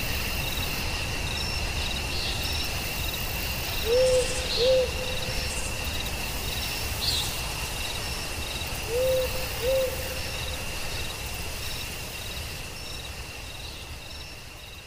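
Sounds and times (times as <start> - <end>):
nighttime chorus of chirping crickets and insects: 0.0 - 14.8
owl hooting softly at night: 3.8 - 5.2, 8.9 - 10.2.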